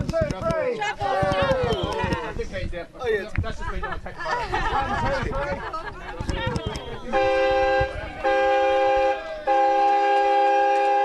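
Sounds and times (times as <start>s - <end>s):
laughter: 0.8s - 2.6s, 3.2s - 8.6s
steam train whistle blasts: 7.1s - 11.0s.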